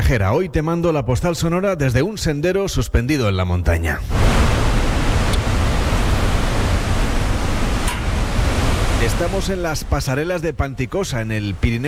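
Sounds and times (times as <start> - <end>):
speech: 0.1 - 4.6, 9.0 - 11.8
loud rushing water: 4.1 - 11.8.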